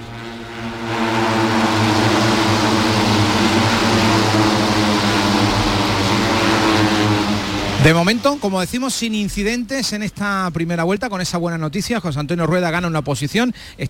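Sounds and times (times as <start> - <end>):
racing motorcycles roaring past on a circuit: 0.0 - 8.5
speech: 7.8 - 13.8.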